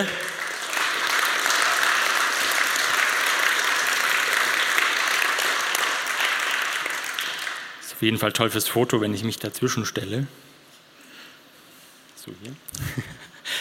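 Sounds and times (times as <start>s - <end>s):
speech: 0.0s - 0.3s, 8.0s - 10.5s, 12.3s - 13.1s
crowd applause: 0.0s - 7.8s
laughter: 12.7s - 13.5s.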